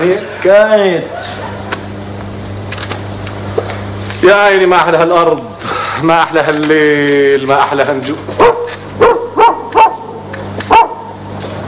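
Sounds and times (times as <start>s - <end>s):
speech: 0.0s - 1.2s, 4.2s - 9.1s
low hum: 0.0s - 11.6s
dog barking: 8.4s - 11.2s.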